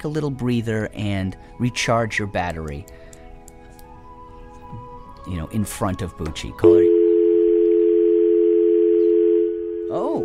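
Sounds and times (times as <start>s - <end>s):
speech: 0.0s - 3.0s, 4.7s - 6.9s
telephone dial tone: 6.7s - 9.9s.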